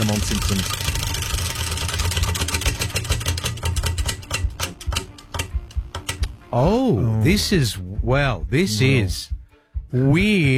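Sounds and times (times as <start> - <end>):
quiz category wheel spinning with ratcheting clicks: 0.0 - 6.3
speech: 0.1 - 1.0, 6.5 - 10.5.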